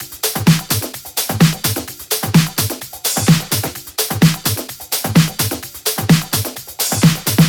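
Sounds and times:
Latin percussion kit: 0.0s - 7.4s.

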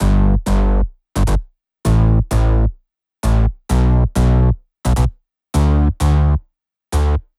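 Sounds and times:
bass line with root G: 0.0s - 6.4s, 7.0s - 7.2s.

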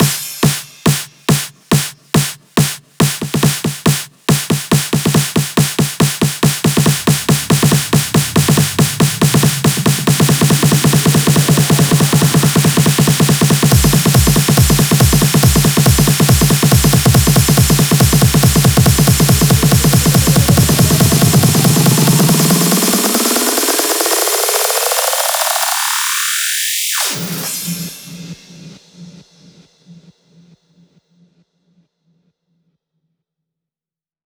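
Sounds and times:
140BPM hands up trance fills: 0.0s - 25.6s.

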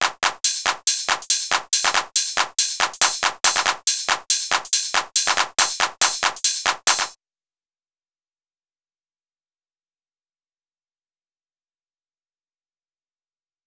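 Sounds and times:
drum mix: 0.2s - 7.2s.

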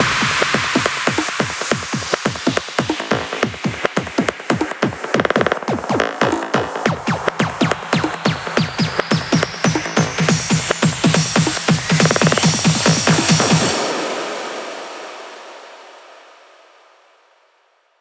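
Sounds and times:
hands up trance fills at 140 BPM: 0.0s - 13.9s.

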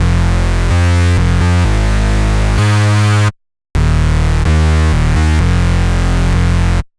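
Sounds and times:
128 BPM bass loop with root F: 0.0s - 6.9s.

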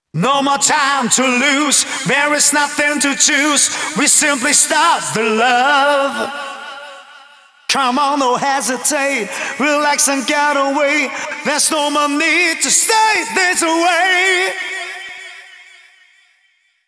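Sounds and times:
wet male vocals verse: 0.0s - 16.2s.

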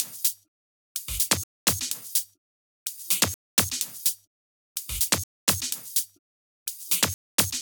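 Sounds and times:
drum kit beat at 126 BPM: 1.0s - 2.2s, 2.9s - 4.1s, 4.8s - 6.1s, 6.7s - 7.6s.

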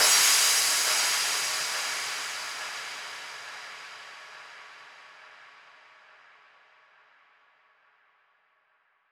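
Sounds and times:
drums and percussion: 0.0s - 5.3s
crash cymbal: 0.0s - 6.3s.

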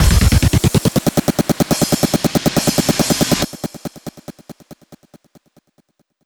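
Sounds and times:
hands up and trance drum fills: 0.0s - 3.5s.

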